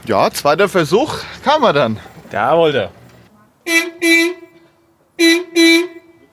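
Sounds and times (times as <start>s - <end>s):
speech: 0.1s - 3.0s, 3.7s - 4.4s, 5.2s - 6.0s
old fire truck horn honking in brassy blasts: 3.6s - 6.3s.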